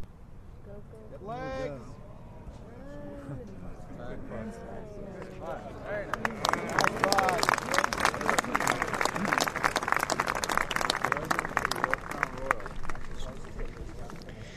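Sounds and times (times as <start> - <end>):
golf gallery murmuring: 1.5 - 14.5
golf gallery applause and cheering for a long putt: 5.2 - 14.5.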